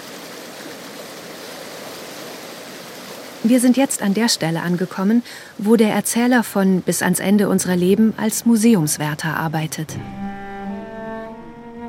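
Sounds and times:
small waves lapping on a river: 0.0s - 7.1s
river water flowing with small waves: 0.0s - 10.5s
speech: 3.4s - 10.2s.

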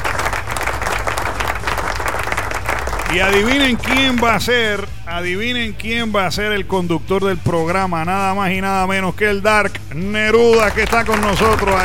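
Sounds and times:
crowd applauding: 0.0s - 4.9s, 10.4s - 11.8s
speech: 3.1s - 11.8s.

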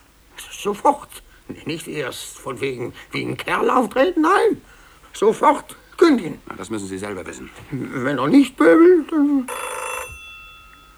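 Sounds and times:
speech: 0.6s - 9.8s
telephone ringing: 7.8s - 10.9s
faint steady telephone tones: 9.0s - 10.9s.

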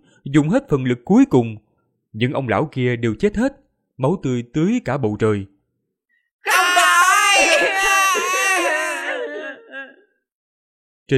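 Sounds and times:
speech: 0.2s - 5.5s
young children crying loudly atop a fortress wall: 6.5s - 10.1s.

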